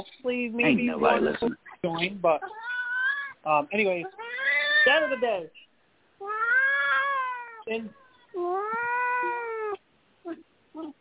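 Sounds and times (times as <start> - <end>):
speech: 0.0 - 2.7, 3.4 - 5.6, 7.7 - 9.4
cat meowing: 1.0 - 5.5, 6.2 - 9.8.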